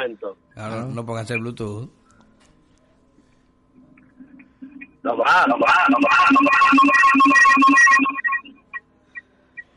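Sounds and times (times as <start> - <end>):
speech: 0.0 - 2.0, 5.0 - 8.3
phone ringtone playing a bright electronic melody: 5.7 - 8.7.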